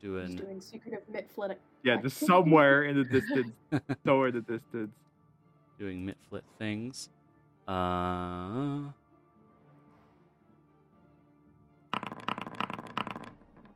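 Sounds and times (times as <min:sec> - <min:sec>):
speech: 0:00.0 - 0:05.1, 0:05.8 - 0:09.0
many dice rattling during a tabletop roleplaying game: 0:12.0 - 0:13.7.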